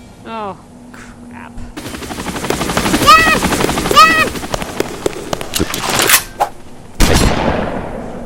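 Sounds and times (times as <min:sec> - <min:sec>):
speech: 0:00.2 - 0:00.7
combat helicopter boss in a video game churning: 0:01.8 - 0:06.8.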